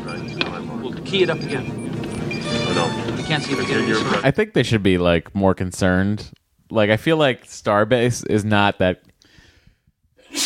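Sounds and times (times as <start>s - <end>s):
speech: 0.9s - 1.8s, 2.8s - 9.1s
soft breathy inhale: 9.2s - 9.9s
person sneezing: 10.2s - 10.4s.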